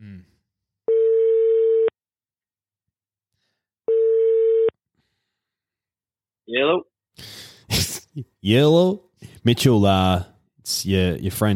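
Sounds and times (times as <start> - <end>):
phone line ringing tones while calling someone: 0.9 - 1.9, 3.9 - 4.7
speech: 6.5 - 7.3, 8.2 - 11.5.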